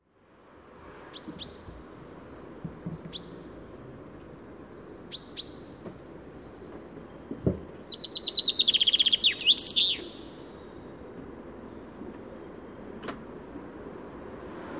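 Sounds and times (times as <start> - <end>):
common chaffinch Fringilla coelebs song: 0.5 - 14.6.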